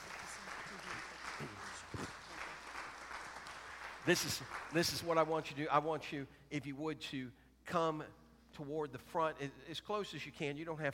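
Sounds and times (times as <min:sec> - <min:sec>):
audience clapping in praise to God: 0:00.0 - 0:05.6
speech: 0:04.1 - 0:10.9.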